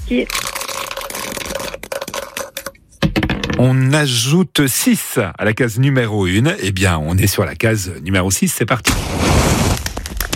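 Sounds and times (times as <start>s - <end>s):
speech: 0.1s - 0.5s, 3.6s - 9.6s
dice being rolled: 0.2s - 3.6s.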